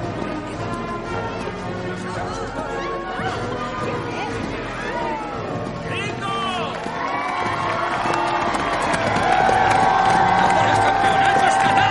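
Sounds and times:
dense outdoor crowd murmuring and shouting at a parade: 0.0s - 11.9s
scattered cheers from a parade crowd: 6.5s - 11.9s.

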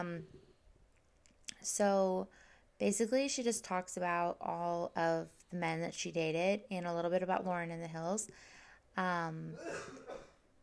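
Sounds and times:
speech: 0.0s - 0.5s, 1.6s - 10.3s
man coughing hoarsely in his sleep: 9.6s - 10.4s.

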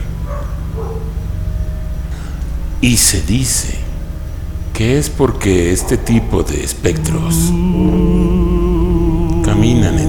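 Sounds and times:
steady low rumbling drone: 0.0s - 10.0s
dog barking: 0.1s - 1.2s, 5.6s - 8.6s
speech: 2.8s - 3.8s, 4.8s - 8.6s.

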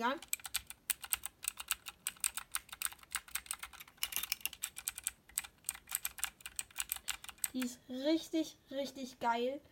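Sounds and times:
speech: 0.0s - 0.4s, 7.6s - 9.7s
typing on a computer keyboard: 0.0s - 7.7s.

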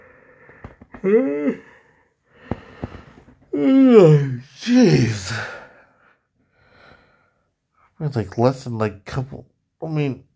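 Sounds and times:
faint breaths: 0.0s - 3.5s, 5.3s - 8.0s
speech: 1.0s - 1.7s, 3.6s - 5.6s, 8.0s - 10.3s
person yawning: 1.0s - 1.9s, 3.5s - 5.6s.

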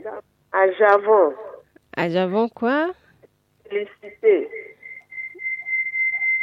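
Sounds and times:
speech: 0.6s - 1.4s, 2.0s - 3.0s, 3.7s - 4.6s
faint blips: 4.0s - 6.4s
feedback whistle from a radio: 4.5s - 6.4s.

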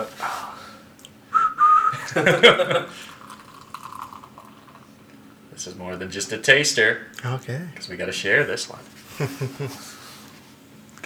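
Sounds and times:
person whistling in imitation of a steam whistle: 1.3s - 2.3s
laughter: 1.6s - 3.3s, 8.4s - 10.3s
speech: 2.1s - 3.1s, 5.6s - 10.0s.

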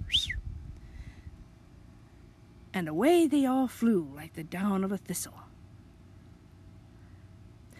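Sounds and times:
man whistling on his sleigh to his team: 0.0s - 0.5s
low rumbling background: 0.0s - 7.7s
speech: 2.8s - 5.4s.

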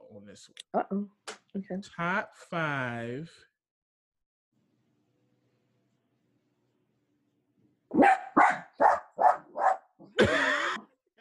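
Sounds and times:
speech: 0.2s - 3.5s
dog barking: 7.9s - 10.0s.

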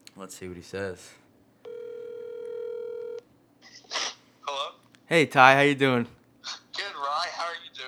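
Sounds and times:
speech: 0.2s - 1.2s, 5.1s - 6.6s
outgoing telephone call ringing tone: 1.7s - 3.2s.

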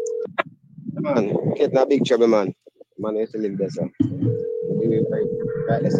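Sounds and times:
speech: 1.0s - 5.9s
electronic phone ring tone: 4.0s - 5.9s.

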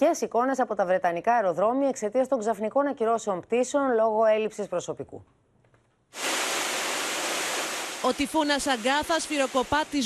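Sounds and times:
speech: 0.0s - 5.5s, 8.0s - 10.0s
rushing water of streets flooding: 6.2s - 10.0s
torrential rain: 6.2s - 10.0s.

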